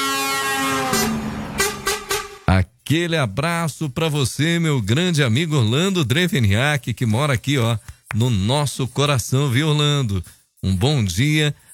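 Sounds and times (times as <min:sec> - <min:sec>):
vehicle horn honking: 0:00.0 - 0:02.5
speech: 0:02.9 - 0:11.6.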